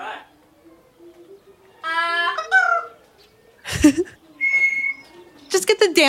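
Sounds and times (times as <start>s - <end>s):
office parrot giving bright warbling whistles: 1.8s - 3.0s, 4.4s - 5.3s
office parrot giving a harsh raspy squawk: 1.8s - 3.1s, 4.3s - 5.2s
speech: 3.8s - 4.2s, 5.8s - 6.0s.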